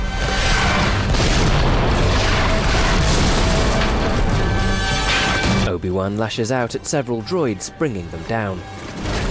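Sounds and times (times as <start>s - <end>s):
heavy cannon fire booming: 0.1s - 5.7s
speech: 6.1s - 9.1s.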